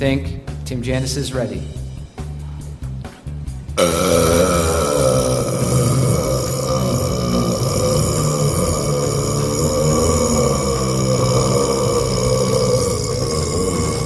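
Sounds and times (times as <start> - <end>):
speech: 0.0 - 1.8
long deep gurgling burp: 3.8 - 14.0.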